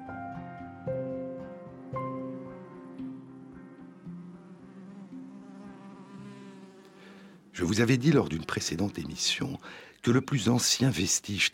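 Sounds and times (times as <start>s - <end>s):
honeybees buzzing: 1.2s - 9.8s
speech: 7.6s - 11.5s.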